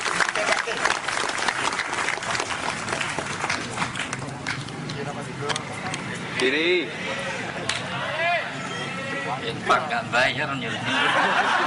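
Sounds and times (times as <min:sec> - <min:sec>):
audience applause for a preacher at a live event: 0:00.0 - 0:04.2
crowd noise: 0:00.0 - 0:11.6
laughter: 0:00.1 - 0:01.1, 0:10.6 - 0:11.6
speech: 0:06.4 - 0:07.0, 0:09.5 - 0:11.6.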